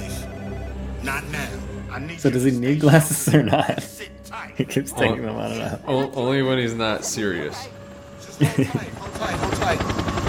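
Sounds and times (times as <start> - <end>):
voices murmuring faintly: 0.0 - 10.2
speech: 1.0 - 7.8, 8.4 - 10.0
laughter: 2.7 - 7.4, 8.2 - 9.5
helicopters approaching with rhythmic rotor chop: 6.6 - 10.2.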